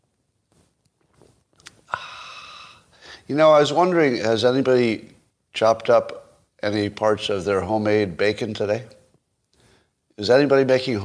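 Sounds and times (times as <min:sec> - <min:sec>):
soft mouth sounds: 0:00.5 - 0:02.9
quiet breath: 0:01.9 - 0:03.3, 0:09.5 - 0:10.1
speech: 0:03.3 - 0:09.0, 0:10.2 - 0:11.0.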